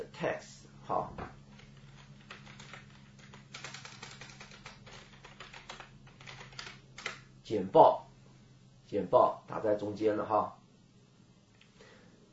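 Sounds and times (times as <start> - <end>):
low steady hum: 0.0 - 12.3
speech: 0.1 - 1.2, 7.5 - 8.0, 8.9 - 10.6
typing on a computer keyboard: 1.5 - 7.2.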